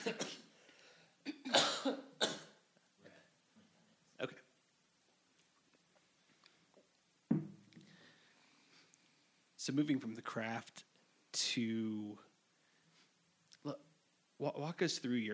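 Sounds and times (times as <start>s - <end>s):
speech: 0.0s - 0.3s, 9.6s - 10.9s, 11.6s - 12.3s, 13.6s - 15.3s
person coughing hard: 0.0s - 0.5s, 1.3s - 2.6s.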